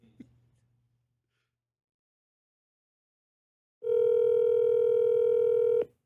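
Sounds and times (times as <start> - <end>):
steady electronic ring tone on an outgoing phone call: 3.8 - 5.9.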